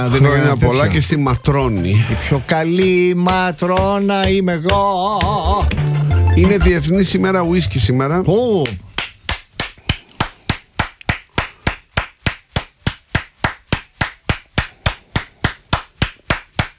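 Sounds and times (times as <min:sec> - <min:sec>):
speech: 0:00.0 - 0:08.9
hand clapping: 0:02.7 - 0:06.2, 0:08.5 - 0:16.7.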